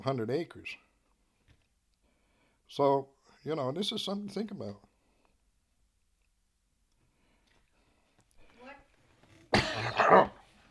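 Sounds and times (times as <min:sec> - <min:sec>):
speech: 0:00.0 - 0:00.9, 0:02.7 - 0:04.9
person coughing: 0:09.5 - 0:10.4.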